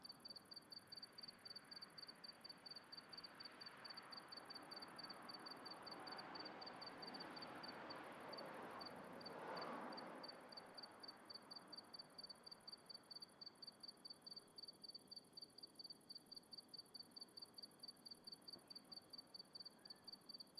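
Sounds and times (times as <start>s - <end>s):
cricket chirping at night in the countryside: 0.0s - 20.5s
car passing at night in the countryside: 5.4s - 10.8s.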